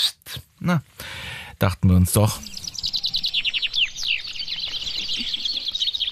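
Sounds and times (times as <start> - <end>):
speech: 0.6 - 2.5
chaffinches singing at a finch contest in Benneckenstein in the Harz: 2.2 - 6.0.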